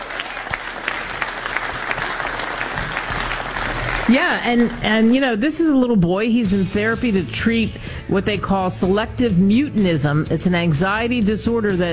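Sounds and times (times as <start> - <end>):
audience clapping: 0.0 - 5.2
speech: 4.1 - 11.9.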